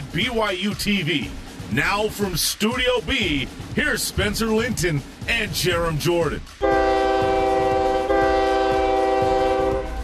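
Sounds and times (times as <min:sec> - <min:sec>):
rolling train rumble: 0:00.0 - 0:10.0
train wheels clicking on the rails: 0:00.0 - 0:10.0
speech: 0:00.2 - 0:06.6
train horn: 0:06.6 - 0:10.0.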